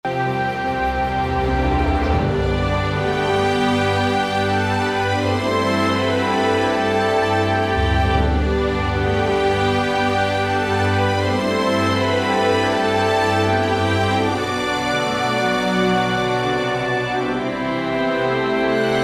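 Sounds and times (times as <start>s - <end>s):
romantic music at 80 BPM: 0.0s - 19.0s.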